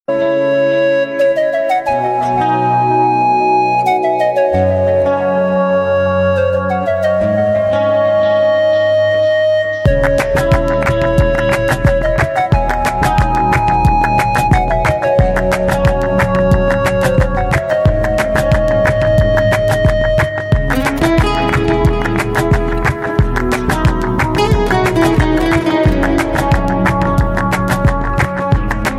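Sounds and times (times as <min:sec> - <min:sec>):
ambient chillout music: 0:00.1 - 0:28.9.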